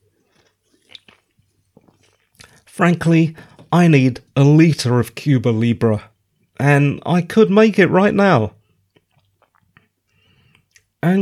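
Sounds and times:
person sipping a drink: 0.1 - 2.7, 8.7 - 11.0
speech: 2.8 - 8.6.

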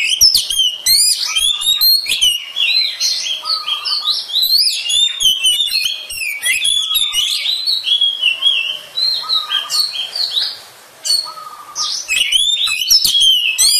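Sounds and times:
Oriental magpie-robin singing long varied song: 0.0 - 13.7.

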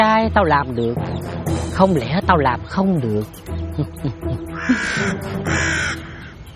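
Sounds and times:
speech: 0.0 - 5.7
bird cawing as it arrives at a star fruit tree: 4.5 - 6.5.

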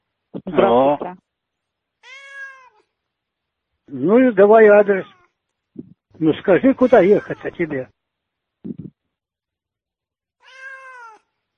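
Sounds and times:
speech: 0.4 - 1.2, 4.0 - 5.1, 5.8 - 8.0, 8.6 - 9.0
cat yowling in the background of a phone call: 2.0 - 2.9, 10.4 - 11.3.

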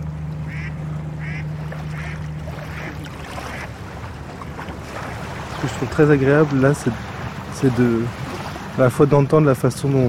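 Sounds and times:
flat barge carrying sand engine drone passing on water: 0.0 - 10.0
short quack-like calls: 0.5 - 3.7
speech: 5.6 - 8.2, 8.8 - 10.0.

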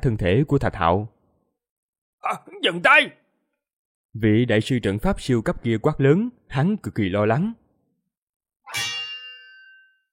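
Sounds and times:
speech: 0.0 - 1.1, 2.2 - 3.2, 4.2 - 7.6
sword ringing out with a bright metallic clang: 8.7 - 10.0.

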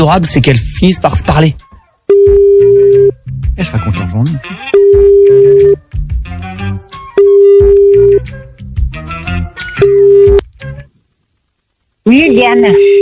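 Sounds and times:
speech: 0.0 - 6.9, 12.1 - 12.9
telephone line beeps while calling someone back on a double call: 2.1 - 3.1, 4.7 - 5.8, 7.1 - 8.2, 9.8 - 10.4.

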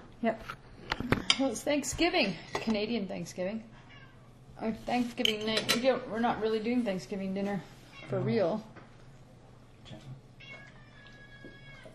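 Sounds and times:
speech: 0.2 - 3.8, 4.6 - 8.7
cat meowing while being fed chicken at home: 10.4 - 11.9.

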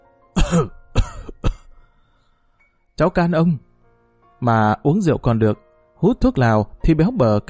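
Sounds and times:
old man coughing aboard a boat at sea: 0.4 - 1.7
speech: 0.5 - 0.8, 3.0 - 3.7, 4.4 - 7.4.

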